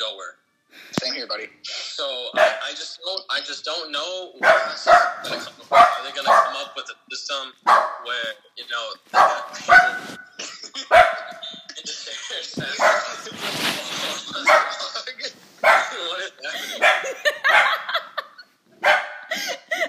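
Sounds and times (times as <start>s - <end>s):
speech: 1.2s - 10.2s
pet dog barking: 2.3s - 2.8s, 4.4s - 6.7s, 7.6s - 8.1s, 9.1s - 10.2s, 10.9s - 11.5s, 12.8s - 13.2s, 14.4s - 14.9s, 15.6s - 16.1s, 16.8s - 18.0s, 18.8s - 19.3s
laughter: 4.7s - 6.7s, 9.3s - 18.5s.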